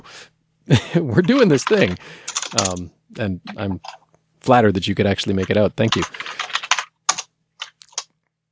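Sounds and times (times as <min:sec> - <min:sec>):
speech: 0:00.7 - 0:06.2
computer keyboard typing: 0:01.2 - 0:02.8, 0:03.4 - 0:04.0, 0:05.3 - 0:08.1.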